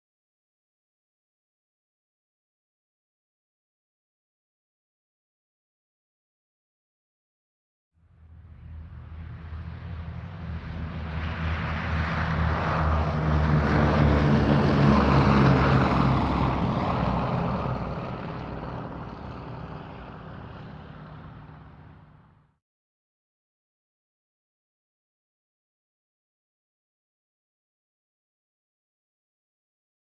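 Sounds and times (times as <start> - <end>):
Boeing B-17 bomber taking off: 8.0 - 22.6.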